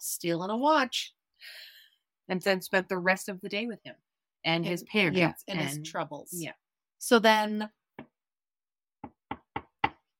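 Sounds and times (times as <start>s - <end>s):
speech: 0.1s - 1.7s, 2.3s - 7.8s
knocking on a door: 9.0s - 10.0s.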